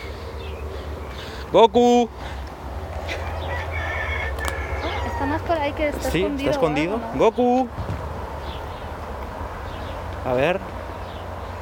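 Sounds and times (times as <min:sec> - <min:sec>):
speech: 0:01.5 - 0:02.2, 0:05.2 - 0:07.9, 0:10.2 - 0:10.7
rooster crowing: 0:03.1 - 0:05.6.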